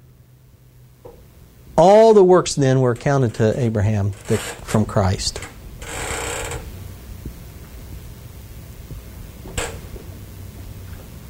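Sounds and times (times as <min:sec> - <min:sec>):
speech: 0:01.8 - 0:05.6
chair scraping or creaking: 0:02.9 - 0:06.8, 0:09.4 - 0:10.1
short sharp creak or knock: 0:04.1 - 0:04.8, 0:05.4 - 0:06.8, 0:09.5 - 0:10.0.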